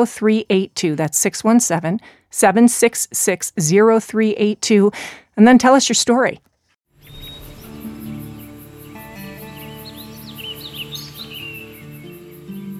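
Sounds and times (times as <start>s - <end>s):
speech: 0.0s - 6.5s
birds chirping and trilling at a museum bird exhibit: 7.0s - 12.7s.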